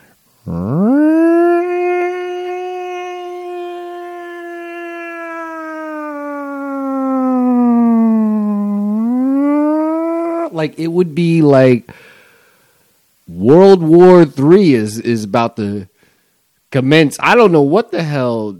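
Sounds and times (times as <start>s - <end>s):
speech: 0.4s - 0.8s, 10.6s - 12.1s, 13.3s - 15.9s, 16.7s - 18.5s
voice imitating a fire department siren: 0.4s - 10.6s.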